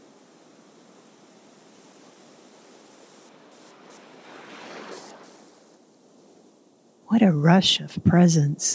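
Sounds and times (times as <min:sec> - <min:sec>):
steady surf washing along a beach: 0:00.0 - 0:07.0
soft sea breeze at a beach: 0:00.0 - 0:08.7
speech: 0:07.1 - 0:08.7.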